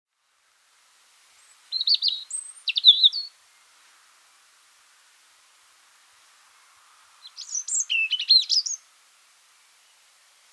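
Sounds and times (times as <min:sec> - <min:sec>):
European robin Erithacus rubecula singing: 0:01.4 - 0:03.4, 0:07.2 - 0:08.9.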